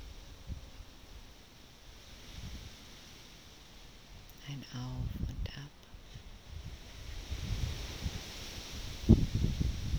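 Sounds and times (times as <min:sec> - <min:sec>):
soft rustling hiss: 0:00.0 - 0:09.9
wind blowing outdoors: 0:00.0 - 0:09.9
speech: 0:04.6 - 0:05.8.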